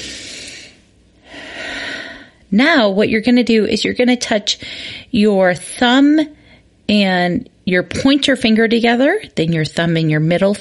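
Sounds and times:
deep breath in during a guided relaxation exercise: 0:00.0 - 0:02.4
speech: 0:02.5 - 0:10.5.

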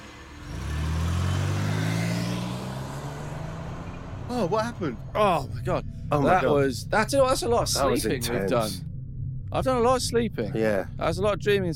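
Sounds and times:
car engine starting and revving: 0:00.0 - 0:08.8
speech: 0:04.3 - 0:08.9, 0:09.5 - 0:11.7.

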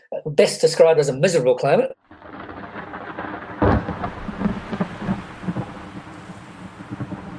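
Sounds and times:
speech: 0:00.2 - 0:02.0
gale-force winds on a remote island: 0:02.1 - 0:07.3
loud crack of thunder: 0:02.1 - 0:07.3
steady rushing rain in a heavy storm on a remote island: 0:02.1 - 0:07.3.

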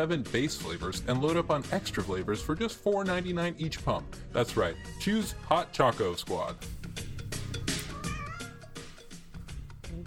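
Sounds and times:
speech: 0:00.0 - 0:06.8
cat meowing: 0:07.7 - 0:09.0.

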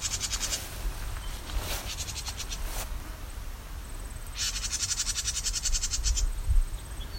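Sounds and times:
house wren giving harsh buzzy scolding chatters near its territory or nest: 0:00.0 - 0:02.8, 0:04.2 - 0:07.1.

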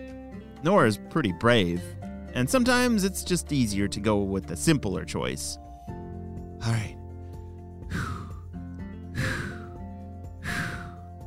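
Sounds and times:
soft steady music: 0:00.0 - 0:11.2
speech: 0:00.6 - 0:05.6, 0:06.6 - 0:07.0
slow deep breaths: 0:07.1 - 0:08.5, 0:09.2 - 0:11.2.

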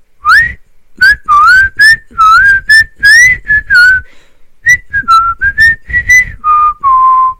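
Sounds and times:
person whistling a tune: 0:00.2 - 0:07.3.

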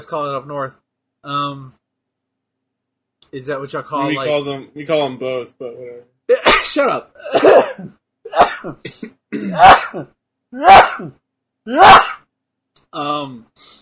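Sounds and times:
speech: 0:00.0 - 0:01.8, 0:03.3 - 0:12.2, 0:12.9 - 0:13.7
person sneezing: 0:06.3 - 0:12.3
person groaning: 0:10.6 - 0:11.1, 0:11.7 - 0:12.2.

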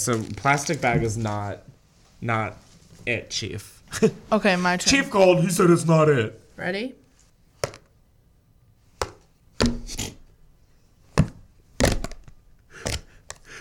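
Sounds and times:
speech: 0:00.0 - 0:07.0
giant thumbtack stabbing a plastic cream cheese lid: 0:09.0 - 0:10.2, 0:11.2 - 0:13.5.

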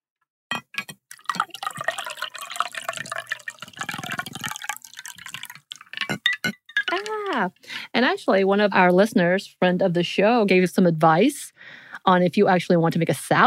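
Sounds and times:
glass clinking: 0:00.5 - 0:07.1
drink pouring into a glass: 0:01.1 - 0:06.2
liquid dripping: 0:01.1 - 0:07.4
speech: 0:07.4 - 0:13.4.

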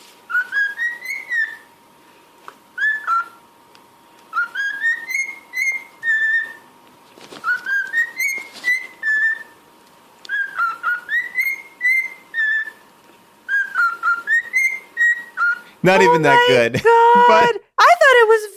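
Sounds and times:
cockatiel whistling a tune: 0:00.3 - 0:01.7, 0:02.8 - 0:03.4, 0:04.3 - 0:06.7, 0:07.4 - 0:09.6, 0:10.3 - 0:12.8, 0:13.4 - 0:16.5
speech: 0:15.8 - 0:18.5.

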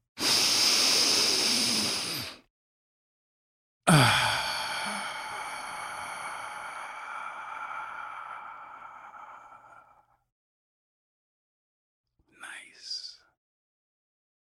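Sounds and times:
deep breath: 0:00.2 - 0:02.5, 0:03.9 - 0:10.2.

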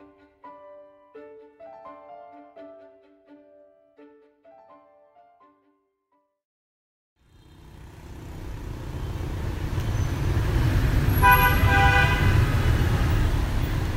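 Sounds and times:
busy motorbike traffic roaring through a city street: 0:07.2 - 0:13.9
sharp horn honking: 0:11.1 - 0:12.6.

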